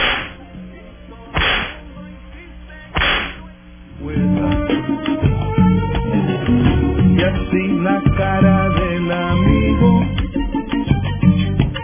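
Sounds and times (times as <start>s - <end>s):
sharp loud whip cracks: 0.0s - 0.4s, 1.4s - 1.8s, 3.0s - 3.4s
music: 0.0s - 11.8s.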